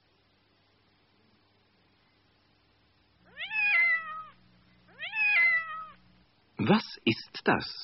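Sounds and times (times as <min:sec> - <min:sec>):
faint low hum: 0:00.0 - 0:07.8
cat meowing: 0:03.2 - 0:06.0
speech: 0:06.6 - 0:07.8.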